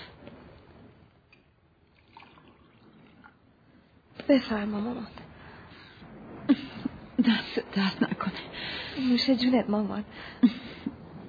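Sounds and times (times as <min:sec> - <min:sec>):
hot boiled water pouring into a cup: 0:01.3 - 0:03.9
speech: 0:04.3 - 0:05.2, 0:07.2 - 0:10.7.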